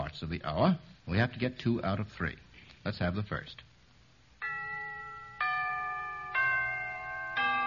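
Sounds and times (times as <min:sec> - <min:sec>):
speech: 0:00.2 - 0:03.7
clock bells ringing a four-note chime phrase: 0:04.4 - 0:07.6.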